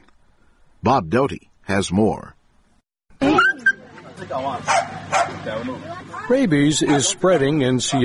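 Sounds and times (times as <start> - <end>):
speech: 0.8 - 2.4, 4.2 - 8.0
stray dogs barking and yelping: 3.2 - 3.9, 4.6 - 5.5, 6.7 - 8.0
murmur: 3.2 - 8.0.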